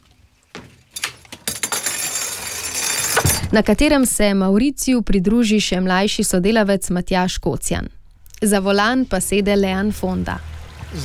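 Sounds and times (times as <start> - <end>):
sharp knocks and metallic clinks: 0.6 - 3.6
diving equipment clattering as it is moved from wheelbarrows onto a boat: 0.6 - 4.0
speech: 3.5 - 11.0.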